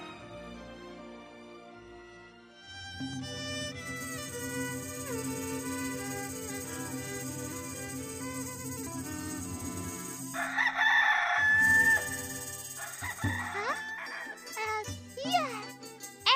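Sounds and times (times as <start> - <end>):
faint jingling: 3.8 - 10.6, 11.6 - 16.3
rooster crowing: 9.3 - 14.6
child's voice: 13.5 - 13.8, 14.5 - 16.3.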